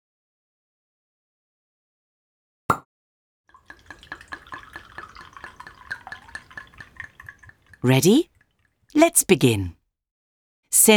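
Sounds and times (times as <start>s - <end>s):
wine glugging from a bottle into a glass: 3.5s - 8.4s
sharp glassy clink: 3.6s - 8.3s
speech: 7.8s - 8.3s, 9.0s - 9.8s, 10.7s - 10.9s.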